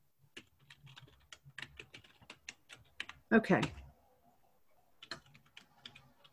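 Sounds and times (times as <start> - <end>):
fingers typing on a computer keyboard: 0.3 - 3.9, 5.0 - 6.3
speech: 3.3 - 3.8.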